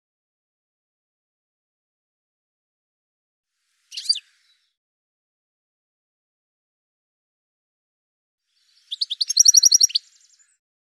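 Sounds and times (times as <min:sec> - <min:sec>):
bird giving a quick series of short high chirped notes: 0:03.8 - 0:04.8, 0:08.5 - 0:10.6.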